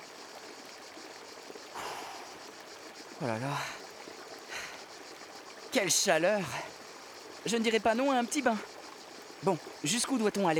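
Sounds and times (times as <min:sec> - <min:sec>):
rushing water from a small fast-flowing river: 0:00.0 - 0:10.5
speech: 0:03.2 - 0:03.8, 0:05.7 - 0:06.8, 0:07.4 - 0:08.7, 0:09.4 - 0:10.5.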